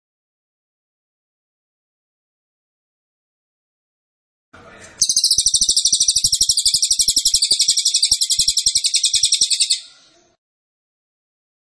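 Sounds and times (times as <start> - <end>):
cililin singing a high-pitched pulsed trill: 5.0 - 10.1.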